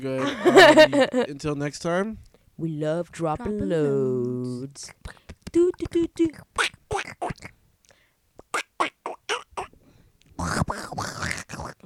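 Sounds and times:
speech: 0:00.0 - 0:07.5
laughter: 0:00.1 - 0:01.3
voice imitating a cartoon duck with raspy quacking syllables: 0:04.8 - 0:07.6, 0:08.4 - 0:09.8, 0:10.4 - 0:11.8.

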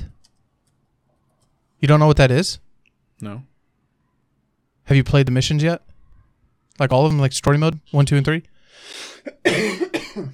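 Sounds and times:
speech: 0:01.8 - 0:02.6, 0:03.2 - 0:03.5, 0:04.9 - 0:05.9, 0:06.8 - 0:10.3
person coughing: 0:09.0 - 0:10.3.

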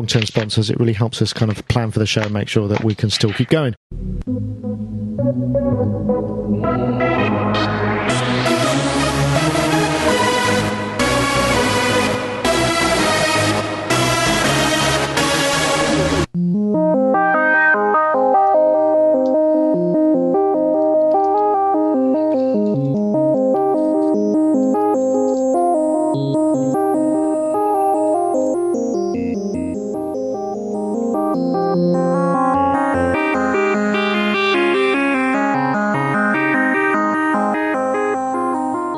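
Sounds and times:
speech: 0:00.0 - 0:04.0
software synthesizer music: 0:03.9 - 0:38.9.

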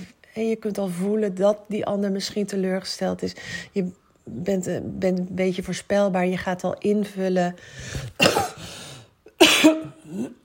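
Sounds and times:
speech: 0:00.4 - 0:08.4
person coughing from a lingering cold: 0:08.2 - 0:08.7, 0:09.3 - 0:10.4.

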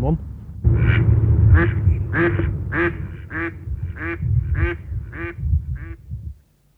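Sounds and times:
low rumbling outdoor background: 0:00.0 - 0:06.7
mallard ducks quacking: 0:00.7 - 0:06.0.

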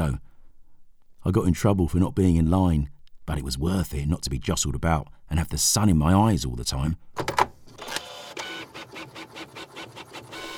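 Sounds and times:
speech: 0:00.0 - 0:00.2, 0:01.2 - 0:07.3
printer head sweeping back and forth, whirring and rattling: 0:07.2 - 0:10.5.

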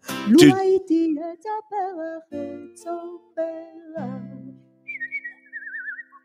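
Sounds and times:
speech: 0:00.3 - 0:04.5
clear high whistled melody: 0:04.9 - 0:06.2.

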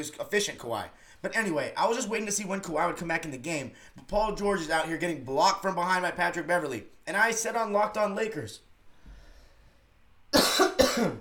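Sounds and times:
speech: 0:00.0 - 0:08.7, 0:10.3 - 0:11.1
harsh raspy coughs: 0:10.3 - 0:11.1.

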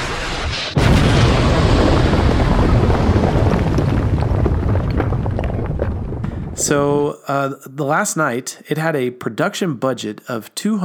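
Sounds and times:
loud explosion rolling into a heavy roaring rumble: 0:00.0 - 0:07.1
speech: 0:06.7 - 0:10.8.

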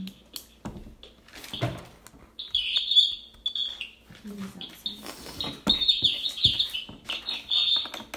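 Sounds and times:
bird chirping outdoors: 0:02.4 - 0:08.1.

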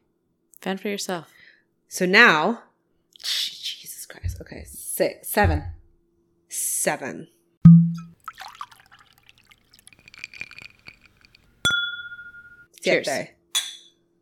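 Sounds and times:
speech: 0:00.6 - 0:05.8, 0:06.5 - 0:07.8, 0:12.8 - 0:13.4
glasses clinking in a toast: 0:07.7 - 0:12.7
drinks trickling and splashing into Yellow Rose glasses: 0:08.1 - 0:11.6.

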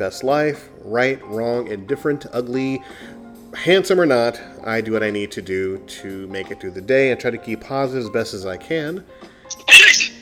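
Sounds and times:
speech: 0:00.0 - 0:09.9
brief inhale: 0:02.8 - 0:03.3, 0:09.1 - 0:09.6
person sneezing: 0:09.5 - 0:10.1.

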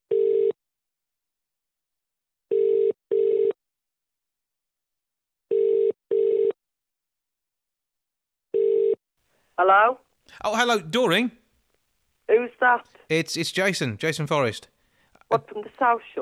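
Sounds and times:
telephone line ringback tone in double pulses: 0:00.1 - 0:00.5, 0:02.5 - 0:03.5, 0:05.5 - 0:06.5, 0:08.6 - 0:09.0
speech: 0:09.6 - 0:11.4, 0:12.3 - 0:14.7, 0:15.3 - 0:16.2.

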